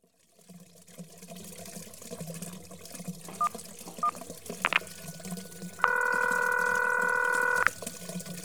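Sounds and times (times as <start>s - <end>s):
telephone keypad beeps: 3.3s - 7.8s
steady electronic telephone tone: 5.8s - 7.7s.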